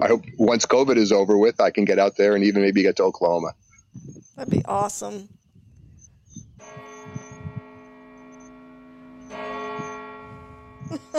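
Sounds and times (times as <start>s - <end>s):
speech: 0.0s - 5.4s, 10.9s - 11.1s
church bells ringing in Oklahoma: 6.6s - 11.1s.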